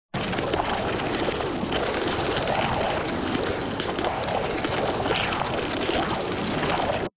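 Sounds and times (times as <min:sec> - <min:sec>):
bubbly noise: 0:00.1 - 0:07.1.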